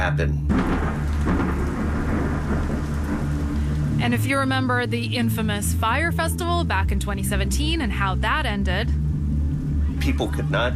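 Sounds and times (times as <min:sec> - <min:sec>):
speech: 0:00.0 - 0:01.6, 0:04.0 - 0:09.0, 0:10.0 - 0:10.7
heavy steady downpour of rain in thunderstorm: 0:00.5 - 0:06.6
deep continuous rumble of thunder: 0:00.5 - 0:10.7.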